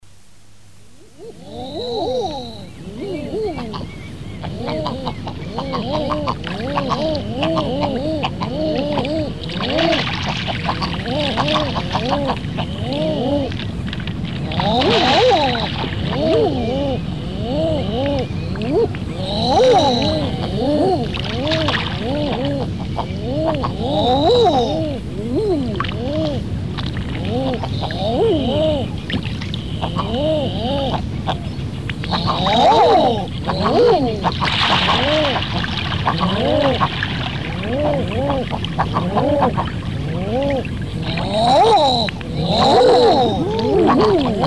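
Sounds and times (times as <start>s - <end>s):
grouse calling: 1.0s - 25.1s, 25.8s - 44.4s.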